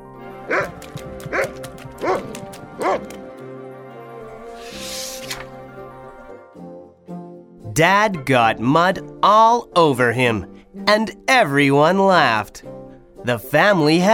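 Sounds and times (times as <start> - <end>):
dog barking while chased by a bigger dog: 0.5 - 3.2
speech: 7.8 - 14.1.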